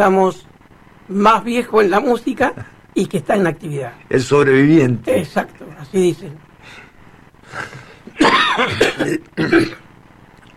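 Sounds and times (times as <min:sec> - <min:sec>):
speech: 0:00.0 - 0:00.5, 0:01.1 - 0:06.8, 0:07.5 - 0:09.8
faint murmur: 0:06.4 - 0:09.9
two people coughing in a radio studio in winter: 0:07.5 - 0:09.9.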